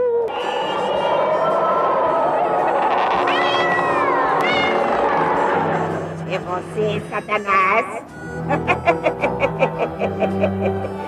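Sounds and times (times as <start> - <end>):
laughter: 0.3 - 6.6, 8.4 - 11.0
cat meowing: 2.9 - 4.8
speech: 6.6 - 9.2.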